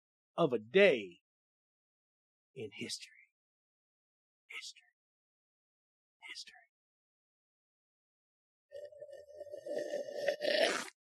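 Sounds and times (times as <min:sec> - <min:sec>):
speech: 0:00.4 - 0:01.2, 0:02.6 - 0:03.2, 0:04.5 - 0:04.8, 0:06.4 - 0:06.6, 0:09.7 - 0:11.0
slurping through a straw from an emptied drink: 0:08.7 - 0:11.0.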